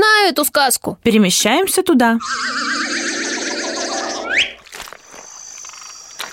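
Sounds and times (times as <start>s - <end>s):
speech: 0.3s - 3.2s
chorus of frogs croaking in a swamp: 2.2s - 6.3s
lingering high ringing tone: 2.2s - 6.3s.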